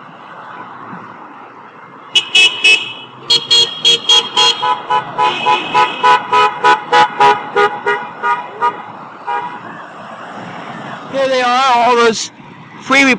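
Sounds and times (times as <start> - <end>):
low traffic rumble: 0.0 - 13.1
car horns honking in support of demonstrators in a hospital area street: 2.1 - 9.6
speech: 12.1 - 12.3, 12.9 - 13.1.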